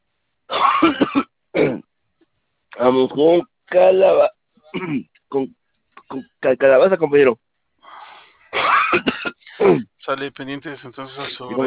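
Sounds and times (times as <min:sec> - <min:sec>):
person with a persistent cough coughing: 0:00.5 - 0:01.8, 0:04.7 - 0:05.1, 0:08.5 - 0:09.9
speech: 0:02.8 - 0:07.4, 0:08.9 - 0:11.6.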